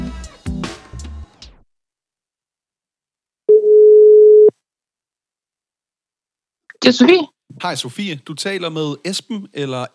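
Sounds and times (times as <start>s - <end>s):
mid-pitched ringback tone of an outgoing phone call: 3.5s - 4.5s
speech: 6.9s - 9.9s.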